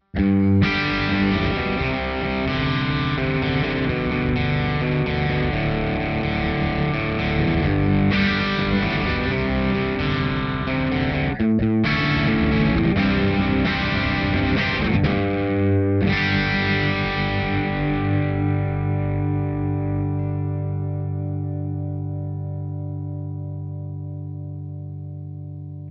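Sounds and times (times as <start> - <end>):
rock overdrive tone: 0.0 - 25.8.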